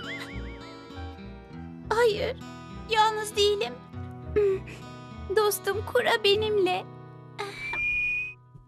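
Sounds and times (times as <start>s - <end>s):
speech: 2.0s - 7.0s
girl's whistle blown in the wilderness: 7.6s - 8.4s.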